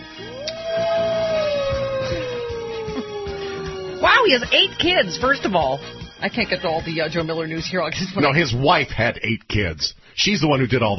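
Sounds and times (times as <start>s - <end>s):
wolf howling: 0.0s - 6.9s
speech: 4.2s - 10.9s.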